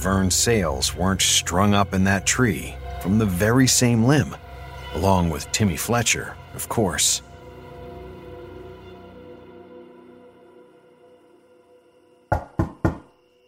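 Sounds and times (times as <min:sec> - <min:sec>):
speech: 0:00.0 - 0:07.3
low musical drone: 0:00.0 - 0:12.3
sharp knocks on a wooden door: 0:12.3 - 0:13.1.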